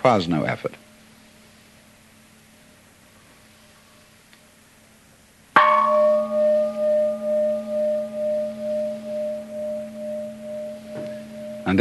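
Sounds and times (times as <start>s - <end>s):
speech: 0.0s - 0.8s
gong struck and ringing: 5.6s - 11.7s.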